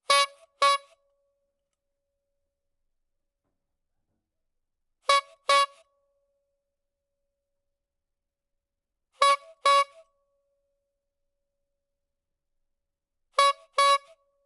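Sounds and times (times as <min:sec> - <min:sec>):
clown horn indoors: 0:00.0 - 0:01.0, 0:05.0 - 0:05.9, 0:09.2 - 0:10.1, 0:13.4 - 0:14.2.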